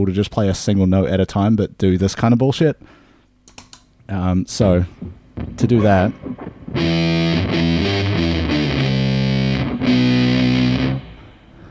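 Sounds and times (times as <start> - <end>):
speech: 0.0 - 3.0, 4.1 - 8.1
heavily fuzzed electric guitar with octave-up and octave-down effect playing single notes: 5.4 - 11.6.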